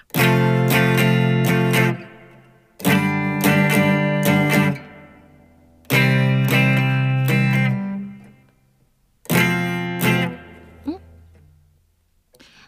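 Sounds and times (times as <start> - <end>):
scratchy noisy guitar sounds: 0.1 - 5.3, 5.9 - 8.5, 9.3 - 11.3
guitar strumming a chord progression: 0.1 - 12.5.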